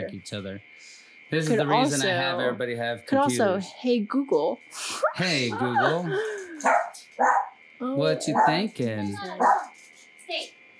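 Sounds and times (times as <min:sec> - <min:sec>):
steady thin whine: 0:00.0 - 0:10.7
speech: 0:00.1 - 0:09.7, 0:10.3 - 0:10.6
laughter: 0:05.1 - 0:06.7, 0:08.2 - 0:09.0
chihuahua yipping: 0:06.6 - 0:07.5, 0:08.1 - 0:08.6, 0:09.3 - 0:09.7.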